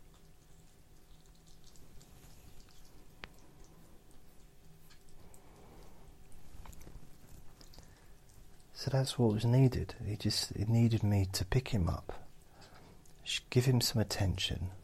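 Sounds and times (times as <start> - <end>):
faint irregular clicks and ticks: 0.0 - 6.0, 6.6 - 8.8
pet munching food from its dish on the floor: 0.0 - 8.8
speech: 8.8 - 12.2, 13.3 - 14.8.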